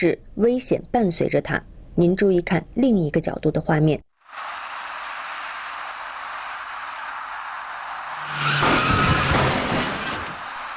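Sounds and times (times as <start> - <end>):
speech: 0.0 - 4.6
steady wash of road noise: 4.3 - 10.7
car engines rumbling in a road intersection: 6.1 - 10.7.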